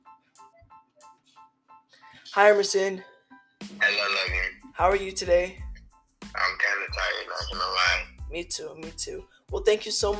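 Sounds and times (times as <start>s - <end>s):
speech: 2.3s - 3.1s, 4.8s - 5.6s, 8.3s - 10.1s
phone ringtone chiming as a call is placed: 6.7s - 8.1s.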